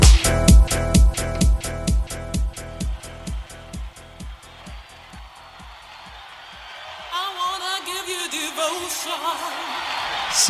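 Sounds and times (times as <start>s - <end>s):
punchy electronic drum beat of UK dance track: 0.0s - 6.8s
crowd cheering and whooping voices: 2.0s - 10.4s.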